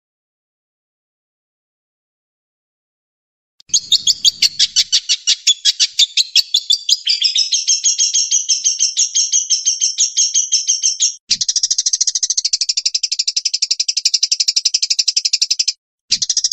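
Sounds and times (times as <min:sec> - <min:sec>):
Long-tailed shrike training song: 0:03.7 - 0:16.5.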